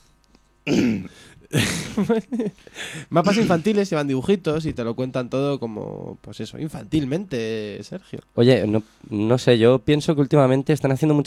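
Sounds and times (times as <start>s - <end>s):
throat-clearing cough: 0.7s - 2.1s, 3.2s - 3.8s
speech: 0.7s - 11.2s.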